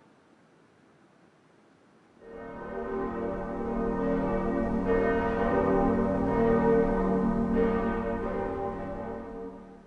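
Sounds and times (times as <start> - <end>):
church bells ringing: 2.2 - 9.8.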